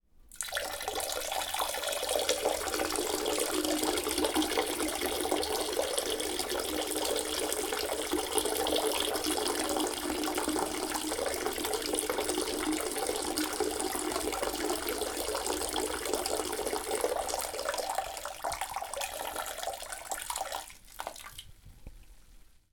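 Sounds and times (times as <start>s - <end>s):
person urinating: 0.3s - 21.6s.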